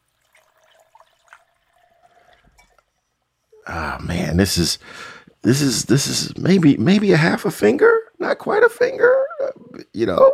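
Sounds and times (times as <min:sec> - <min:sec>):
whiskey gurgling and splashing into a glass: 0:00.0 - 0:02.9
speech: 0:03.7 - 0:09.3, 0:10.0 - 0:10.3.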